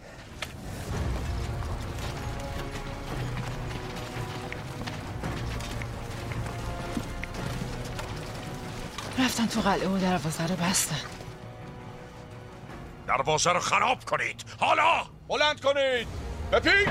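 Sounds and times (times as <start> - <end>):
galloping hooves of a rider's horse: 0.4 - 12.8
speech: 9.2 - 11.2, 13.2 - 16.9.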